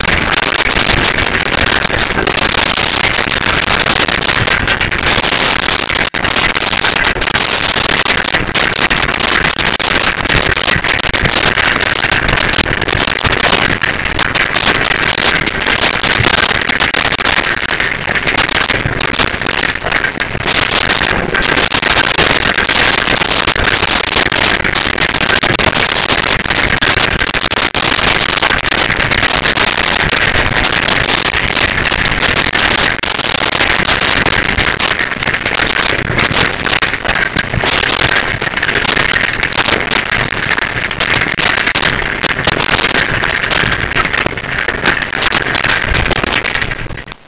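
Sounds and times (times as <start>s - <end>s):
bicycle pedaling steadily: 0.0s - 47.2s.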